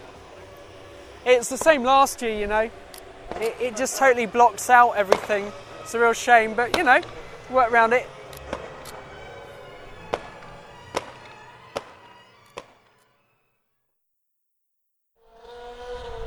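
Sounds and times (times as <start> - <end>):
dense rumbling roar: 0.0 - 12.1
firework bangs: 0.0 - 13.3
speech: 1.2 - 2.8, 3.4 - 8.2.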